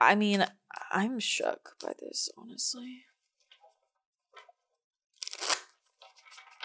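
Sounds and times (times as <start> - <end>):
speech: 0.1 - 3.1
tarot cards being shuffled: 5.2 - 6.6.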